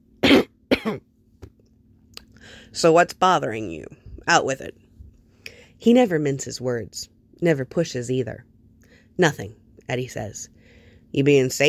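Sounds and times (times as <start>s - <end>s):
man coughing: 0.2s - 1.0s
speech: 0.8s - 1.1s, 2.5s - 4.8s, 5.8s - 8.5s, 9.2s - 11.6s.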